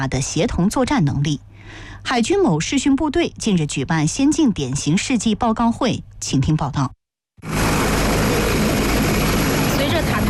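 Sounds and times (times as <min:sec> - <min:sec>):
speech: 0:00.0 - 0:07.6
helicopter engine roaring with heavy rotor throb during lift-off: 0:07.4 - 0:10.2.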